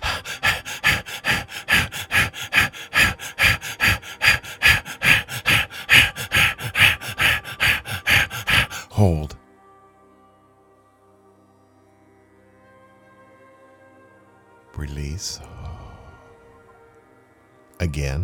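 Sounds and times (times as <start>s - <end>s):
rapid forceful breathing in and out during a breathing exercise: 0.0s - 9.4s, 15.3s - 16.5s
speech: 9.0s - 9.4s, 15.2s - 15.6s, 17.8s - 18.2s.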